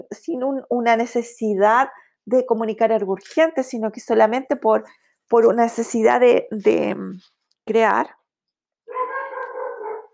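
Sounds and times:
speech: 0.0s - 8.2s
dog howling whine: 8.9s - 10.1s.

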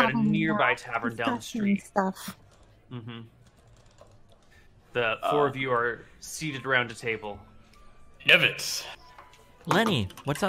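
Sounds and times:
speech: 0.1s - 3.4s, 4.9s - 7.5s, 8.2s - 9.0s, 9.6s - 10.4s
computer keyboard typing: 3.4s - 4.6s, 9.7s - 10.4s.

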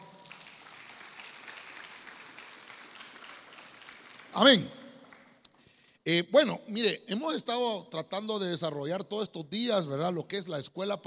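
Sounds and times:
church audience clapping loudly: 0.0s - 5.6s
speech: 4.4s - 4.8s, 6.1s - 11.0s.

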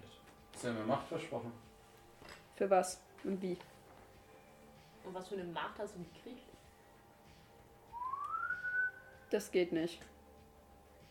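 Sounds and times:
speech: 0.6s - 1.7s, 2.6s - 3.7s, 5.0s - 6.6s, 9.3s - 10.1s
whistled tone sliding upward in pitch: 7.9s - 9.3s.

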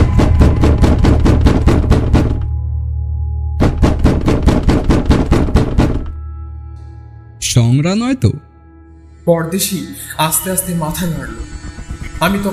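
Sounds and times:
loud rapid pounding on a front door: 0.0s - 2.5s, 3.6s - 6.2s
speech: 7.8s - 8.5s, 9.3s - 11.6s, 12.2s - 12.5s.

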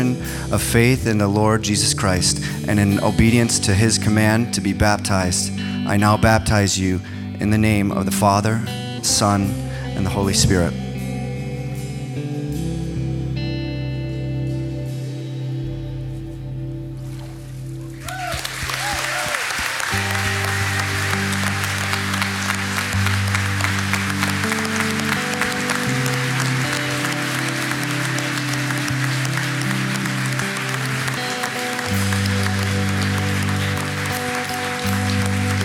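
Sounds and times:
sustained music: 0.0s - 35.6s
speech: 0.5s - 10.9s
congregation applauding: 17.9s - 35.6s.

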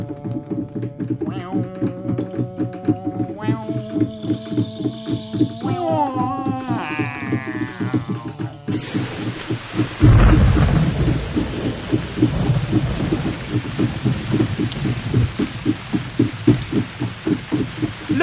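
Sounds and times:
steady rain hissing: 0.2s - 18.2s
deep rumble of thunder: 8.7s - 18.2s.

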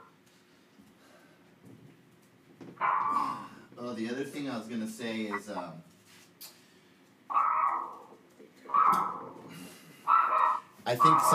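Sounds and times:
agitated dog whining yelps: 2.8s - 3.3s, 7.3s - 8.1s, 8.7s - 9.4s, 10.1s - 11.3s
speech: 3.9s - 6.5s, 10.9s - 11.3s.

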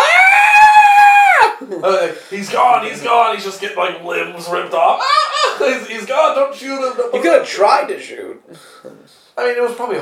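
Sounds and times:
loud sustained high-pitched scream: 0.0s - 1.6s
speech: 1.8s - 9.9s
laughter: 4.8s - 6.0s.

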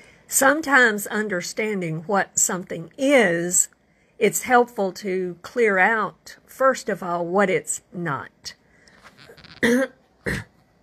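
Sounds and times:
speech: 0.3s - 8.6s, 9.6s - 10.5s
person clearing throat: 9.5s - 10.6s.

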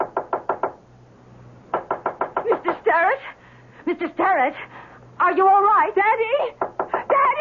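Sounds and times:
firm knocking on a locked study door: 0.0s - 0.8s, 1.7s - 2.8s, 6.6s - 7.2s
speech: 3.9s - 6.7s.

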